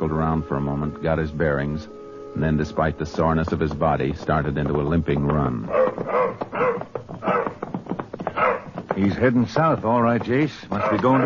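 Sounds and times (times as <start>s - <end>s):
speech: 0.2s - 6.4s, 9.0s - 11.2s
hurt dog barking and whimpering: 5.7s - 7.6s, 8.4s - 8.7s, 10.8s - 11.2s
sniffing and scuffling: 5.7s - 7.6s, 8.3s - 9.1s.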